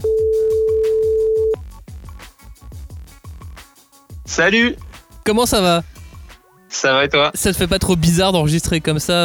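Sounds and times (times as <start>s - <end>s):
outgoing phone call ringing tone: 0.0s - 1.6s
rhythmic music: 0.0s - 9.2s
speech: 4.4s - 5.9s, 6.7s - 9.2s.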